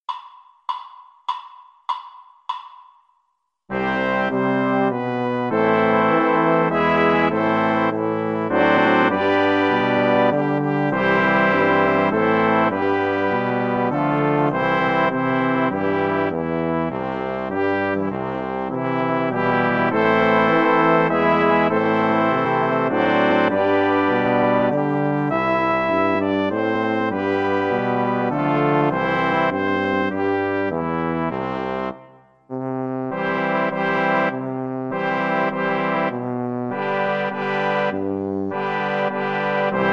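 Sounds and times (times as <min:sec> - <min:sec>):
French horn: 0:03.7 - 0:39.9.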